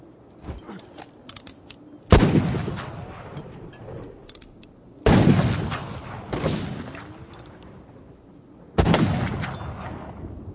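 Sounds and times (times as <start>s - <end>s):
rifle shots: 2.1s - 3.4s, 5.0s - 7.2s, 8.8s - 10.1s.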